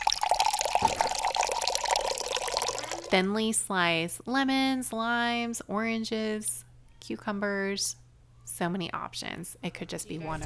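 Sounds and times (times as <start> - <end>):
water pouring into a glass pitcher: 0.0 - 3.2
speech: 3.1 - 10.4.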